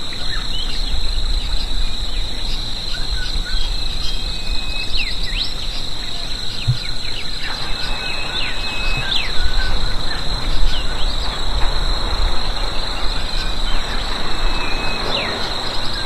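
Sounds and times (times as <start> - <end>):
high insect drone over open fields: 0.0 - 16.0
low rumble of wind: 0.0 - 16.0
birds chirping and whistling: 2.9 - 16.0.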